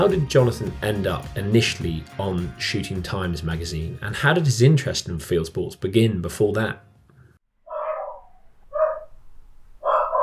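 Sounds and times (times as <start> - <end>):
speech: 0.0 - 6.9
dogs barking: 7.7 - 9.2, 9.8 - 10.2.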